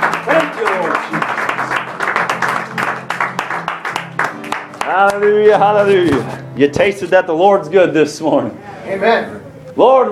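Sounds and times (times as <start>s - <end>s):
church congregation clapping hands in praise: 0.0s - 5.9s
speech: 5.2s - 10.0s.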